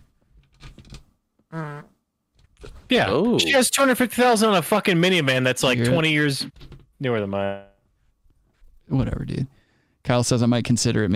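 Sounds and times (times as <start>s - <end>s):
fart noise: 1.5s - 2.0s
speech: 1.5s - 2.0s, 2.9s - 7.7s, 8.9s - 11.1s.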